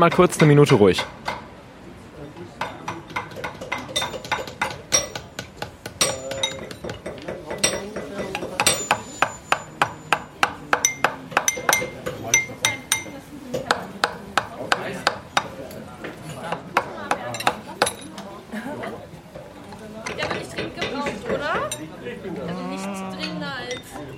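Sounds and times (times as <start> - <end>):
speech: 0.0 - 1.4
hammers forging metal rings on rods: 0.0 - 1.5, 2.6 - 15.6
murmuring voices and chatter: 13.1 - 24.1.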